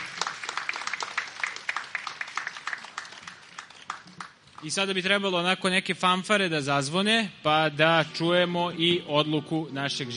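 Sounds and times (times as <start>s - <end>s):
audience applause at a stage event: 0.0s - 4.7s
speech: 4.6s - 10.1s.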